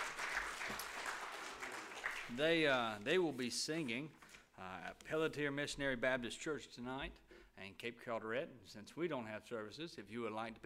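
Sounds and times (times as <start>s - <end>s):
audience applause after a singing group's performance: 0.0s - 2.6s
speech: 2.3s - 10.6s.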